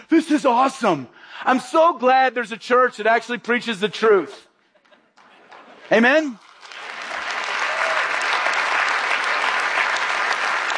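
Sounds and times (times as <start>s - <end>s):
speech: 0.1s - 4.5s, 5.9s - 6.5s
large gathering applauding: 5.2s - 10.7s.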